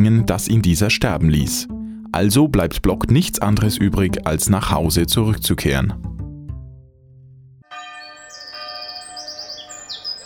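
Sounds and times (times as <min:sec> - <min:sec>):
speech: 0:00.0 - 0:06.2
deep bell tone: 0:07.6 - 0:10.2
chorus of many birds chirping at dawn: 0:07.7 - 0:10.2.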